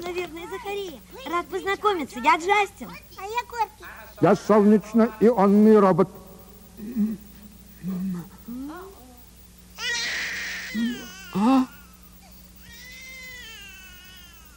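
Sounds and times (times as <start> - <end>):
speech: 0.1 - 6.2, 10.8 - 11.7
newborn baby boy crying: 9.8 - 14.5.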